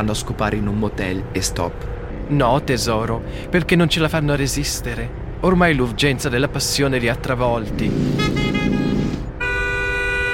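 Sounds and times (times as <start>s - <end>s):
speech: 0.0s - 8.5s
low rumble of traffic: 0.0s - 10.3s
car horn honking: 8.1s - 10.3s.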